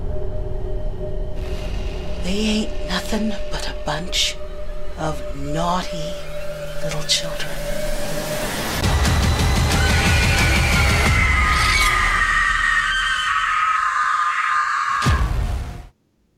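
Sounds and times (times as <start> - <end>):
noisy rumbling noise: 0.0 - 12.2
speech: 2.3 - 4.4, 5.0 - 7.8
long piercing scream: 8.8 - 15.3.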